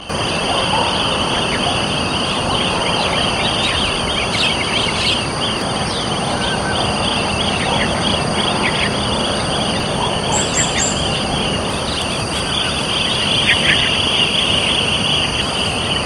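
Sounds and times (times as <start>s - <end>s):
chestnut-headed bee-eaters calling in social behaviour in Ipoh City Perak Malaysia: 0.0s - 16.0s.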